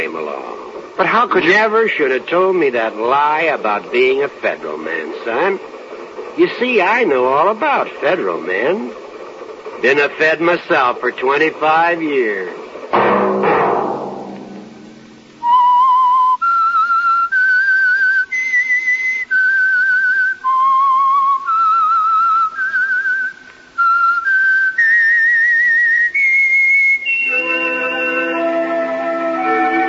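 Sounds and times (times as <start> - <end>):
speech: 0.0 - 5.8, 6.4 - 9.0, 9.8 - 13.2
fuller lower musical accompaniment: 0.0 - 16.5, 27.1 - 29.8
single whistler whistling a slow tune as a signal: 15.4 - 28.7.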